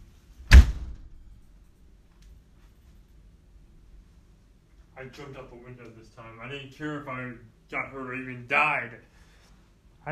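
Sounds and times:
door kicked until it bursts open: 0.4 - 1.3
speech: 5.0 - 9.1.

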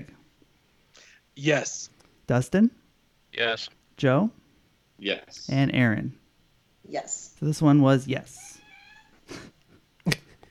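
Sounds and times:
speech: 1.4 - 4.4, 5.0 - 6.2, 6.9 - 8.5
cat meowing: 8.4 - 9.2.

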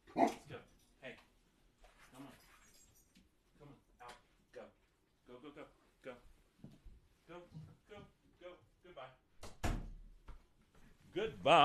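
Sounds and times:
dogs barking: 0.1 - 0.5
speech: 11.2 - 11.6.

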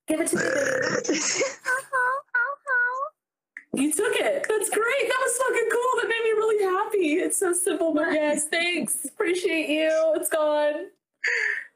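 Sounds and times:
speech: 0.1 - 1.9, 3.8 - 11.4
long loud rough burp: 0.2 - 1.4
short tonal burped bursts in a sung pattern: 0.3 - 1.5.

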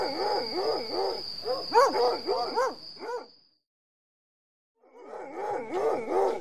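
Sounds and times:
several hounds barking and baying: 0.0 - 3.3, 4.9 - 6.3.

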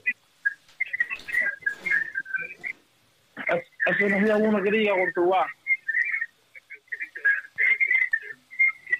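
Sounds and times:
shrill warbling feedback squeals on a phone line: 0.4 - 2.8, 4.6 - 8.9
thin distorted voice speaking on a phone line: 0.8 - 2.8, 3.4 - 8.9
speech: 3.5 - 5.6.

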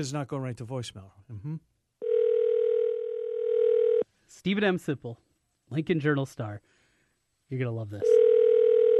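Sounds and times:
speech: 0.0 - 1.8, 4.3 - 6.7, 7.5 - 8.2
telephone ringback tone while placing a call: 2.0 - 4.0, 8.0 - 8.9.

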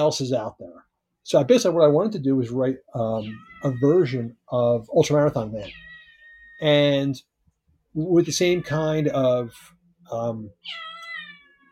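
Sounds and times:
speech: 0.0 - 5.9, 6.6 - 7.3, 7.9 - 11.0
cat meowing: 3.1 - 4.3, 5.6 - 6.8, 8.4 - 9.7, 10.5 - 11.7.

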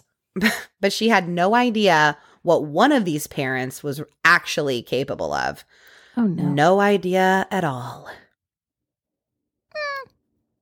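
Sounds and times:
speech: 0.4 - 8.2
cat meowing: 9.7 - 10.2.

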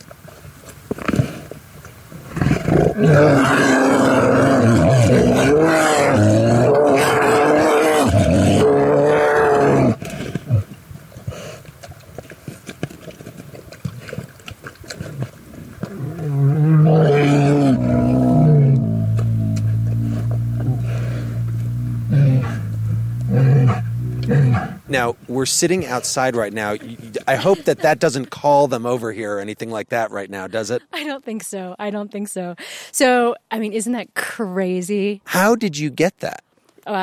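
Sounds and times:
grizzly bears roaring and growling: 2.4 - 10.6, 15.2 - 25.0
speech: 3.0 - 3.7, 25.4 - 37.0
laughter: 26.4 - 29.1.

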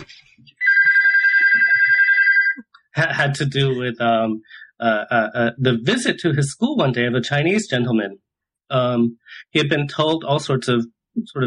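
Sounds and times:
phone ringing with electronic trill: 0.6 - 2.7
speech: 3.0 - 11.4.

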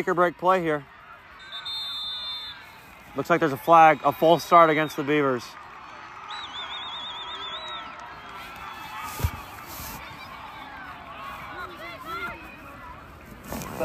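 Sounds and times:
speech: 0.0 - 0.9, 3.2 - 5.6
large stadium crowd roaring: 0.0 - 13.8.

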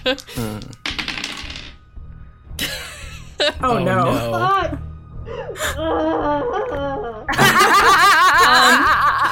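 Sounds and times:
speech: 0.0 - 0.8, 3.4 - 8.0
dice clattering across a hard table: 0.2 - 1.8
laughter: 5.6 - 9.3.

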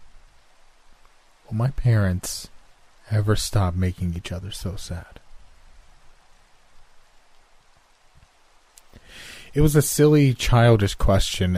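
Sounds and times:
light drizzle hissing: 0.0 - 11.5
speech: 1.5 - 2.5, 3.1 - 5.2, 9.1 - 11.5
faint scattered raindrop taps: 6.7 - 8.9.

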